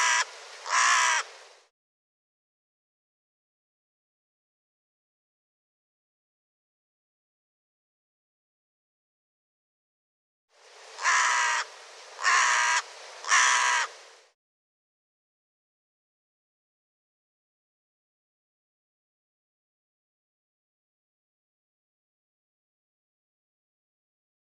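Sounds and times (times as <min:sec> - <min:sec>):
harsh bird caws: 0:00.0 - 0:01.3, 0:11.0 - 0:14.0.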